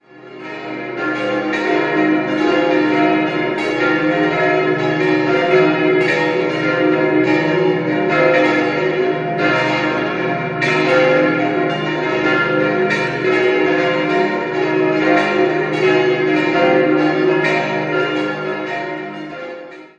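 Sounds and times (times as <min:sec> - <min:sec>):
bells in Fiecht: 0:00.0 - 0:19.9.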